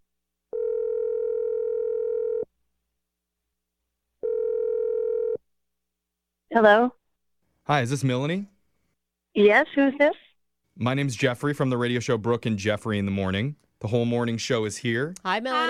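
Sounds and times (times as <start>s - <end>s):
telephone ringing tone: 0.5s - 2.5s, 4.2s - 5.4s
speech: 6.5s - 7.0s, 7.6s - 8.5s, 9.4s - 10.2s, 10.8s - 15.6s.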